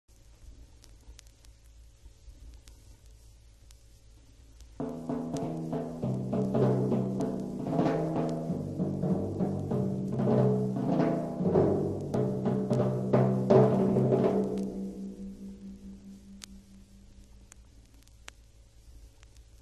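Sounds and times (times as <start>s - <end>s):
timpani playing various percussion effects: 4.8s - 17.0s.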